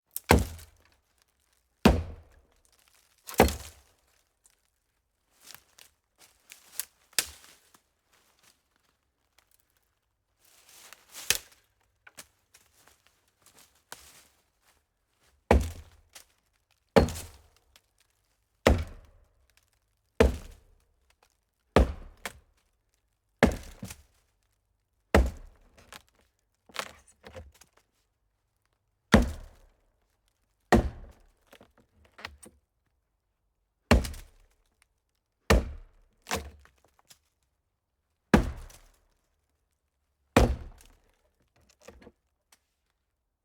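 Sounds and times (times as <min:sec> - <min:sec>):
chopping a hollow tree: 0:00.2 - 0:00.9, 0:01.8 - 0:02.4, 0:03.3 - 0:03.8, 0:15.5 - 0:16.0, 0:17.0 - 0:17.5, 0:18.6 - 0:19.3, 0:20.2 - 0:20.8, 0:21.7 - 0:22.4, 0:23.4 - 0:24.1, 0:25.1 - 0:27.6, 0:29.1 - 0:29.7, 0:30.7 - 0:32.5, 0:33.9 - 0:34.5, 0:35.5 - 0:36.7, 0:38.3 - 0:39.0, 0:40.4 - 0:41.2.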